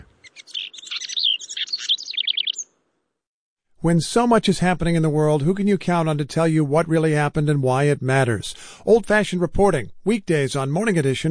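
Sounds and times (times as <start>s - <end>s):
male house wren singing: 0.0s - 2.7s
speech: 3.8s - 11.2s.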